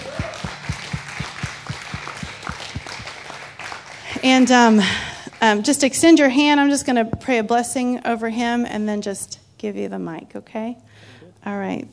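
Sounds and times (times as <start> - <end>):
applause: 0.0 - 5.6
audience clapping: 0.0 - 5.6
speech: 4.2 - 11.9.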